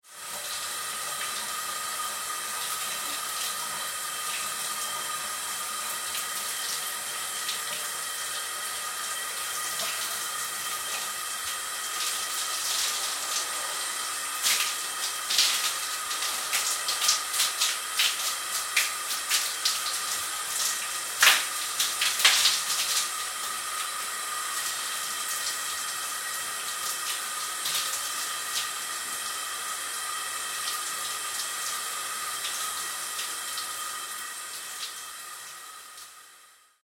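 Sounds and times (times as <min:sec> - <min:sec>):
bathroom shower water running: 0:00.0 - 0:36.8.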